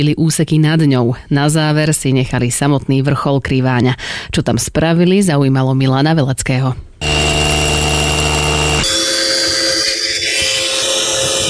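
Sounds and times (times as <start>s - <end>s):
speech: 0.0s - 7.2s
angle grinder cutting: 7.0s - 11.4s
power drill whining with strong harmonic tones: 7.0s - 11.4s.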